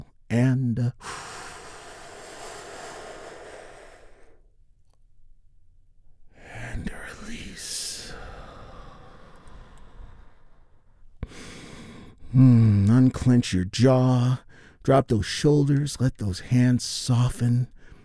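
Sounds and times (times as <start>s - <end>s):
deep healing breath in and out during a guided morning relaxation: 1.0s - 4.6s, 6.3s - 12.9s, 14.4s - 14.8s, 17.7s - 18.0s
speech: 12.4s - 17.8s.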